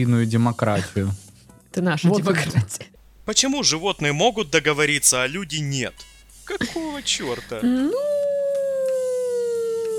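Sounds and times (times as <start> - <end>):
speech: 0.0 - 1.2, 1.8 - 8.1
dog howling: 7.9 - 9.9.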